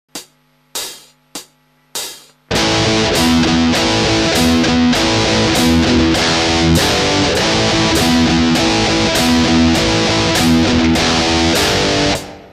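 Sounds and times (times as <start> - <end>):
natural harmonics: 2.5 - 12.5.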